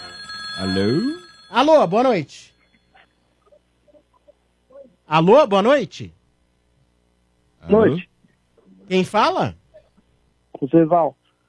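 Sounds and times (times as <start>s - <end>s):
telephone ringing on a call-in line: 0.0s - 3.3s
speech: 0.6s - 2.5s, 5.1s - 6.2s, 7.6s - 8.1s, 8.9s - 9.6s, 10.6s - 11.2s.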